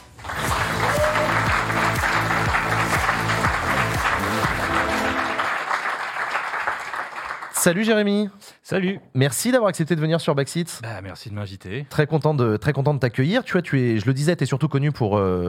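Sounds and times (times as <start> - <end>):
studio audience applause: 0.0 - 7.8
rhythmic musical jingle: 0.5 - 5.8
speech: 7.6 - 15.4.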